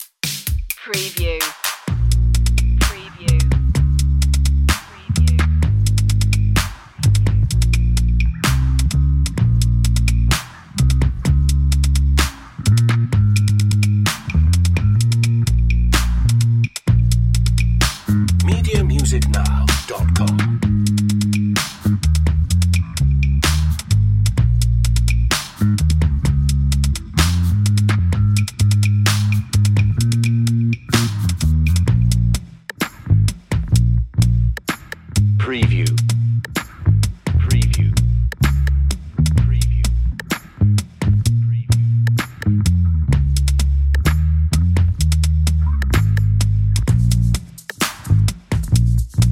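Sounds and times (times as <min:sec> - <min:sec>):
drums: 0:00.0 - 0:49.3
bass: 0:01.2 - 0:49.3.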